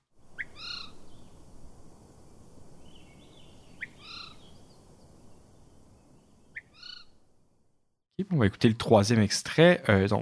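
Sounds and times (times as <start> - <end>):
Swainson's Thrush alarm calls: 0.3 - 7.2
speech: 8.2 - 10.1.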